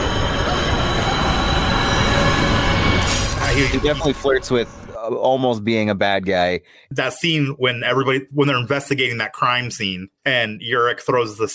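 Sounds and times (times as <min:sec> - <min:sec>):
subway train roaring past: 0:00.0 - 0:05.0
thin metallic squeal of subway train: 0:00.0 - 0:05.0
speech: 0:03.6 - 0:11.5.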